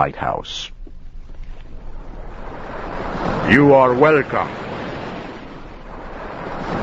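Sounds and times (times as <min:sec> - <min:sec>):
speech: 0:00.0 - 0:00.8, 0:03.4 - 0:04.6
ocean waves crashing on rocks below a lighthouse: 0:01.7 - 0:06.8.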